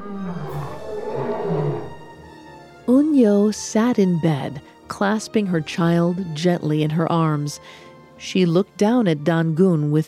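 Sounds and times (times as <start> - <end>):
tiger roaring: 0.0 - 2.2
speech: 2.9 - 10.0.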